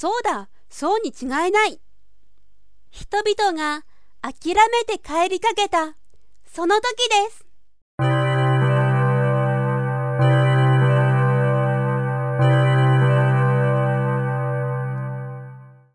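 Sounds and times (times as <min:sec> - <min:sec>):
speech: 0:00.0 - 0:01.9, 0:02.9 - 0:07.4
large church tower bell tolling: 0:08.0 - 0:15.9.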